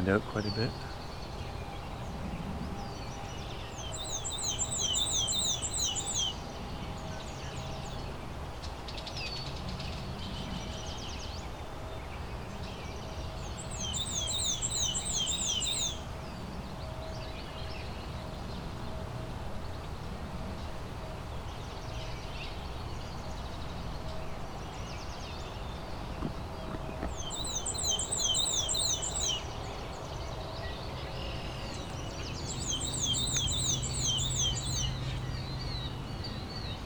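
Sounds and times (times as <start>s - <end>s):
speech: 0.0s - 1.0s
steady outdoor hiss: 0.0s - 36.8s
killdeer calls passing overhead: 3.7s - 6.4s, 13.5s - 16.0s, 27.0s - 29.5s, 31.7s - 35.3s.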